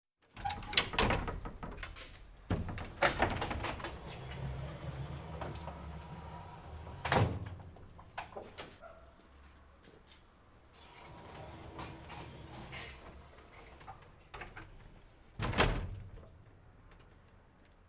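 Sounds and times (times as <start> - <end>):
garage door: 0.2 - 9.1, 10.7 - 17.5.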